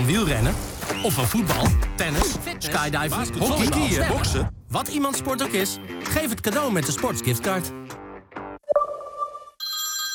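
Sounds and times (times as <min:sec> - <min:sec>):
speech: 0:00.1 - 0:07.8
telephone ringing with electronic tones: 0:08.7 - 0:10.1.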